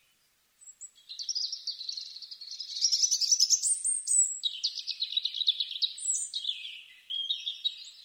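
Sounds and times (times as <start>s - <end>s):
European robin Erithacus rubecula singing: 0.0s - 8.0s.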